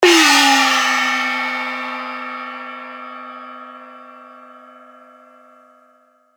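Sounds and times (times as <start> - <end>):
cymbal crash: 0.0 - 5.0.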